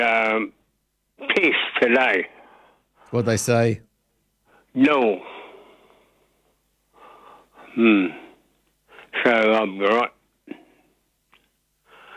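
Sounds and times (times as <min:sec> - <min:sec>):
speech: 0:00.0 - 0:00.6, 0:01.2 - 0:02.4, 0:03.1 - 0:03.9, 0:04.7 - 0:05.4, 0:07.8 - 0:08.2, 0:09.2 - 0:10.2
loud strained wheezy breathing: 0:04.4 - 0:09.2, 0:11.8 - 0:12.1.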